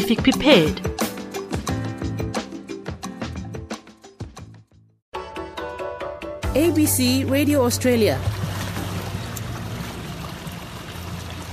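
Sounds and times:
music playing aboard a small boat: 0.0s - 10.2s
speech: 0.1s - 0.9s, 6.6s - 8.4s
ocean water washing against a small boat: 7.0s - 11.5s.

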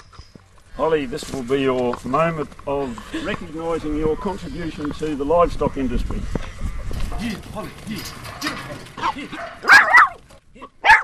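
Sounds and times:
speech: 0.8s - 6.4s, 7.2s - 9.8s
low voices: 0.8s - 9.6s
working sheep dog barking sharply: 9.3s - 10.2s, 10.8s - 11.0s.

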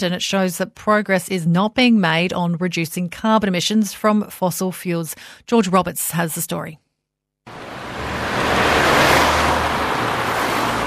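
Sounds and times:
speech: 0.0s - 6.8s
low engine drone: 7.5s - 10.8s
road traffic of cars and trucks: 7.5s - 10.8s.

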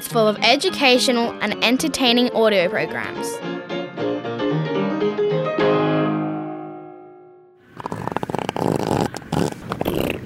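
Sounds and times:
speech: 0.0s - 3.5s
short musical jingle: 4.8s - 7.6s
Australian elephant seal farting: 7.7s - 10.2s.

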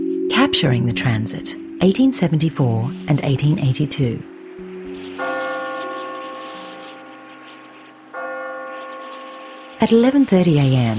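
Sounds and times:
speech: 0.4s - 4.3s, 9.8s - 10.9s
loud observatory bell ringing as a signal: 3.3s - 10.9s.

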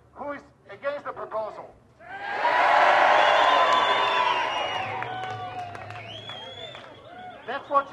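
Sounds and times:
crowd of about 1000 people at a local forum cheering and whooping: 2.0s - 7.6s.

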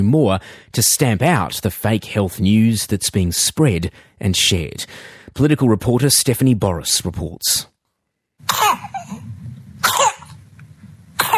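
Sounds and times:
speech: 0.0s - 7.7s
four-week-old infant with whooping cough coughing: 8.5s - 9.2s, 9.8s - 10.4s, 11.2s - 11.3s.

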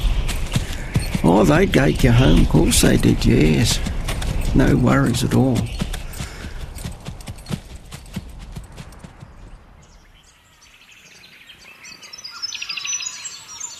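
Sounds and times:
horse hooves clip-clopping: 0.0s - 10.1s
birds chirping and tweeting: 0.0s - 13.7s
speech: 1.2s - 3.9s, 4.5s - 5.8s.

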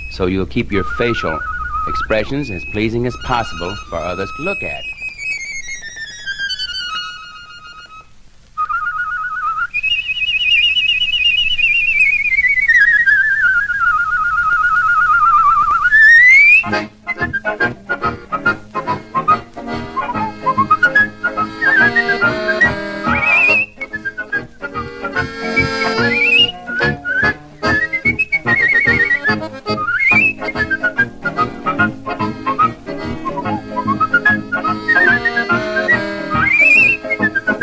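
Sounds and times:
rhythmic music: 0.0s - 5.0s, 16.6s - 37.6s
person lip whistling a sliding melody: 0.0s - 5.8s, 8.6s - 37.6s
speech: 0.2s - 4.9s.

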